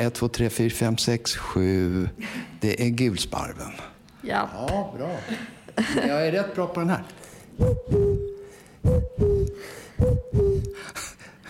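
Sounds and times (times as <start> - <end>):
speech: 0.0 - 8.1
common cuckoo calling: 7.6 - 10.8.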